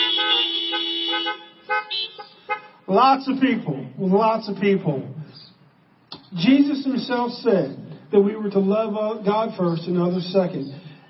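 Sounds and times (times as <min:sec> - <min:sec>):
car horns honking: 0:00.0 - 0:02.9
speech: 0:02.9 - 0:05.2, 0:06.3 - 0:10.8.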